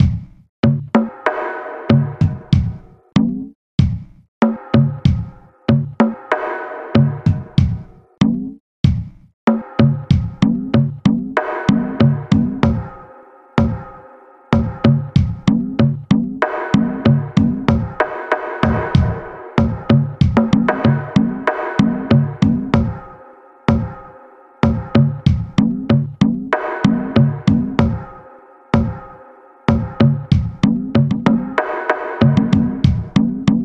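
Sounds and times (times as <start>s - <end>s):
electrical drums from a game rip: 0.0s - 14.0s, 14.6s - 28.2s, 28.8s - 33.6s.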